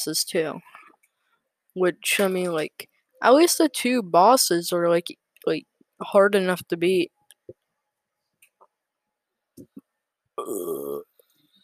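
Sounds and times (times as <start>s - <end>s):
speech: 0.0s - 0.8s, 1.8s - 7.2s, 10.4s - 11.1s
loud drawn-out burp: 10.4s - 11.1s
small clicks and short throaty noises: 10.4s - 11.2s.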